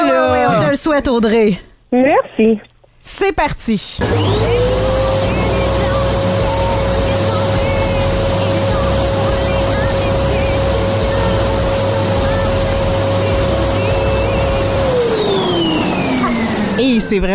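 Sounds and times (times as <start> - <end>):
speech: 0.9 - 4.8, 17.0 - 17.3
Dyson vacuum cleaner running with high-pitched whine: 4.0 - 17.3.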